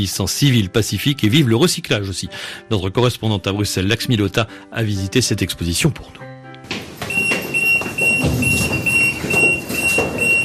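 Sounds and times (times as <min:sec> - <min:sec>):
speech: 0:00.0 - 0:06.3
footsteps indoors at museum exhibition: 0:06.6 - 0:10.4
museum exhibition security gate alarm beeping, triggered by visitor anti-theft tag in Brussels: 0:07.0 - 0:10.4.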